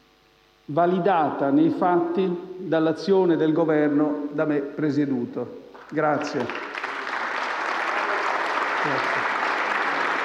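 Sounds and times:
speech: 0.7 - 6.7, 8.8 - 9.3
applause from a large audience in the Senate chamber: 5.8 - 10.2.

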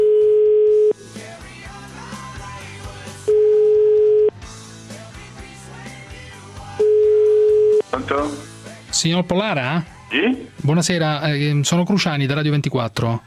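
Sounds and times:
ringback tone of an outgoing phone call: 0.0 - 1.0, 3.3 - 4.4, 6.8 - 7.9
music playing: 1.0 - 12.2
speech: 9.0 - 13.2.

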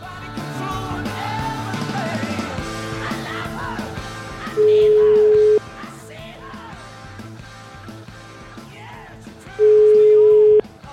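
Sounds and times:
outgoing telephone call ringback tones: 4.6 - 5.6, 9.6 - 10.7.

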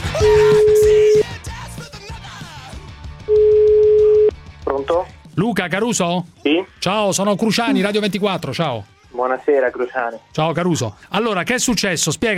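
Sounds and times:
telephone ringback tone while a call is being placed: 0.2 - 1.2, 3.3 - 4.3
speech: 5.6 - 12.3.

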